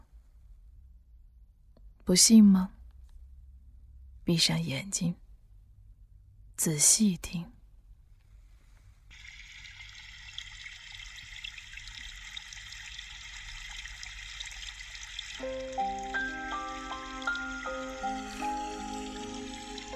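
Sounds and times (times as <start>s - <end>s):
speech: 2.1s - 2.8s, 4.3s - 5.2s, 6.6s - 7.6s
stream babbling through dense woods: 9.2s - 19.9s
soft melodic instrumental line: 15.4s - 19.9s.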